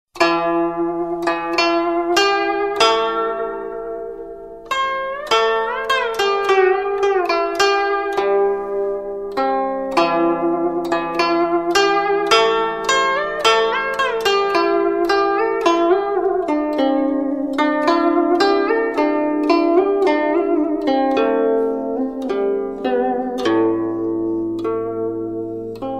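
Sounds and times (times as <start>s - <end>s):
guzheng tune: 0.2s - 25.9s.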